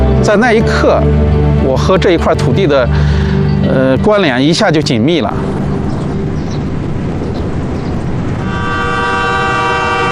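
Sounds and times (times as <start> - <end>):
train departing on the Qinghai-Tibet Railway rumbling: 0.0 - 10.1
speech: 0.3 - 5.6
train horn blaring: 8.4 - 10.1.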